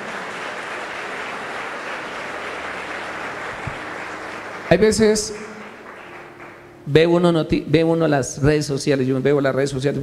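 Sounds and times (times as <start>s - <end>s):
congregation clapping together: 0.0s - 7.1s
speech: 4.7s - 5.5s, 6.9s - 10.0s.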